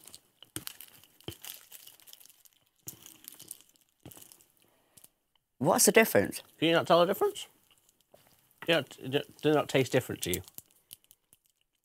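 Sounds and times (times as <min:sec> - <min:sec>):
chocolate bar wrapper being torn and crinkled open: 0:00.0 - 0:04.6, 0:07.7 - 0:11.6
speech: 0:05.6 - 0:07.5, 0:08.7 - 0:10.5.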